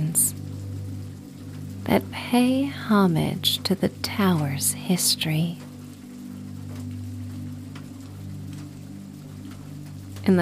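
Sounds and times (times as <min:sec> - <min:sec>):
low droning hum: 0:00.0 - 0:10.4
steady rain: 0:00.0 - 0:10.4
speech: 0:01.8 - 0:05.6.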